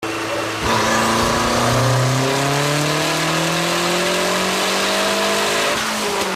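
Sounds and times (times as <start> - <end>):
Daytona on a dyno from the rear: 0.0 - 6.3.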